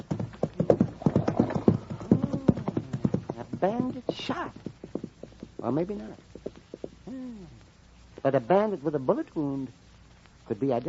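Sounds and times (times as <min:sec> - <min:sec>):
hooves of a horse pulling a cart clip-clopping: 0:00.0 - 0:07.1
speech: 0:03.6 - 0:04.7, 0:05.6 - 0:06.3, 0:08.2 - 0:09.8, 0:10.5 - 0:10.8.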